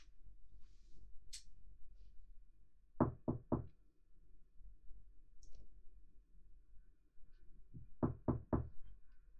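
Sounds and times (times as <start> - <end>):
sharp raps knocking on a door: 3.0 - 3.7, 7.8 - 8.8.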